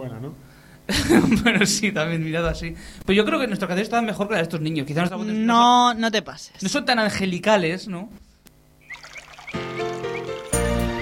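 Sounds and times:
speech: 0.0 - 8.3
water pouring: 8.8 - 10.6.

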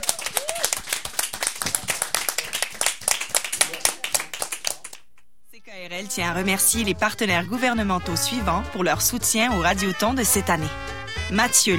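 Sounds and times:
group applauding at the closing show of a radio fundraiser: 0.0 - 5.3
speech: 6.0 - 11.7.

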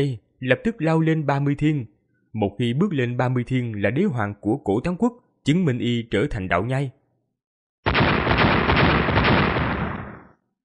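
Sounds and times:
speech: 0.0 - 7.0
loud earth-shaking explosions: 7.9 - 10.4.

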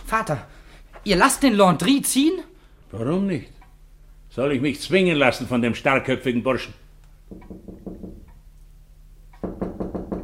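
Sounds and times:
speech: 0.1 - 3.6, 4.3 - 7.6
knocking on a door: 7.3 - 8.3, 9.4 - 10.2.

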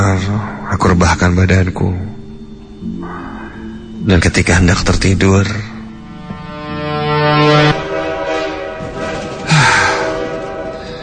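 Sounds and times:
speech: 0.0 - 2.2, 4.0 - 5.7
train horn on a railway line near a home at night: 6.1 - 11.0.

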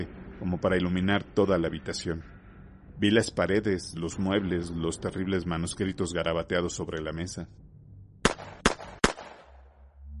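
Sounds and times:
speech: 0.0 - 2.3, 3.0 - 7.6
low rumble: 0.0 - 10.1
gunshots in a dark room during a thunderstorm: 8.2 - 9.7.

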